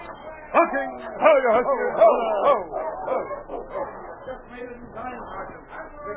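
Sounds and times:
speech: 0.6 - 3.7
sled dog teams barking and yipping while brought aboard a boat: 1.4 - 4.4.

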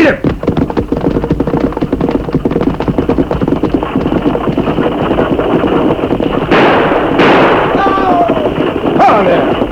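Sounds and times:
galloping hooves: 0.0 - 9.6
speech: 0.1 - 0.3
gunshots during a stagecoach holdup: 3.2 - 9.6.

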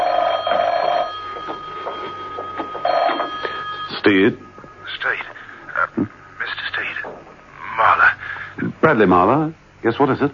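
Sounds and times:
telephone ringing with a bright steady trill: 0.0 - 6.0
speech: 4.0 - 5.2, 8.8 - 10.3.

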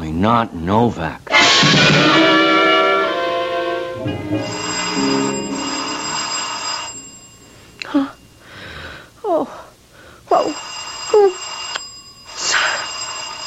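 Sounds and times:
speech: 0.2 - 2.4, 4.0 - 5.6, 7.9 - 8.2, 9.4 - 9.6
doorbell ringing: 1.3 - 8.5, 10.3 - 13.4.

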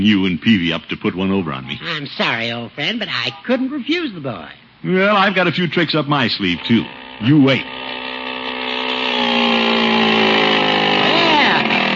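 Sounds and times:
speech: 0.0 - 8.1
small motor of a motorized bicycle running: 6.3 - 11.9.

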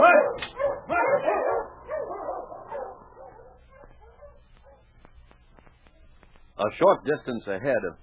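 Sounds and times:
dog short yipping barks: 0.0 - 4.9
speech: 6.6 - 8.0.

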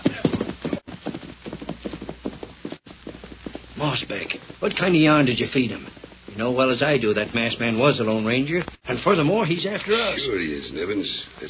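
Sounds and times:
fresh horse hooves clip-clopping as a rider sets off on the trail: 0.0 - 8.8
speech: 3.8 - 11.4.

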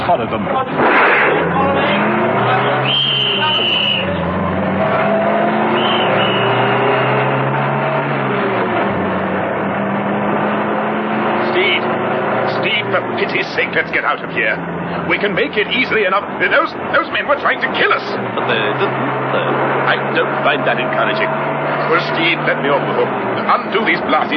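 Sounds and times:
heavy armored car engine starting and roaring off: 0.0 - 24.3
speech: 0.1 - 5.3, 12.9 - 24.3.

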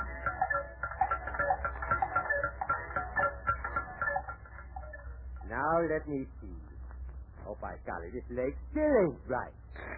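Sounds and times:
many clocks ticking: 0.0 - 6.3
faint clock chiming tones: 0.0 - 6.4
speech: 5.8 - 6.6, 7.5 - 9.6.

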